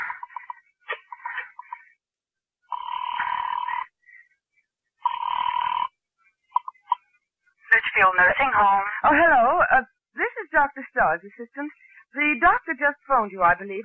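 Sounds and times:
telephone ringing on the line: 2.7 - 4.0, 5.0 - 6.0, 6.6 - 7.0
speech: 8.0 - 13.8.

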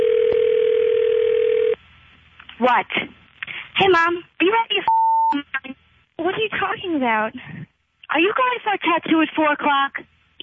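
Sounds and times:
telephone dial tone while dialing out: 0.0 - 1.8
speech: 2.7 - 3.2, 3.8 - 10.1.

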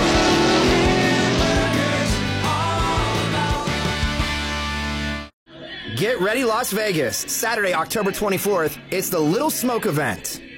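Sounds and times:
muscle car tires squealing: 0.0 - 2.2
throaty muscle car engine roaring and revving as it speeds off: 0.0 - 4.2
speech: 6.0 - 10.5.

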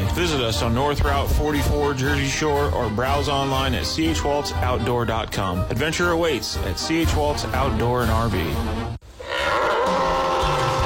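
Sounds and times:
speech: 0.2 - 9.0
bull bellowing: 9.2 - 10.8.

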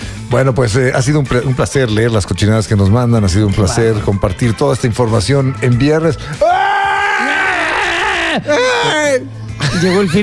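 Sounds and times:
speech: 0.3 - 6.7, 8.4 - 10.2
loud sustained scream echoing from a dungeon: 6.4 - 9.0
laughter: 9.6 - 10.2.

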